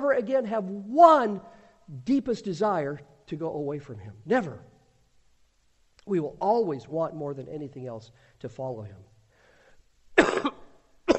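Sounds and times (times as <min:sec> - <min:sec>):
speech: 0:00.0 - 0:04.7, 0:06.1 - 0:09.1
person coughing sharply: 0:10.2 - 0:11.1.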